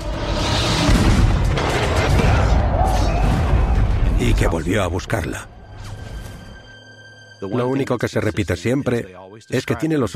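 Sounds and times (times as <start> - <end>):
cannon fire during battle: 0.7 - 4.6
speech: 4.4 - 5.6, 7.4 - 10.1.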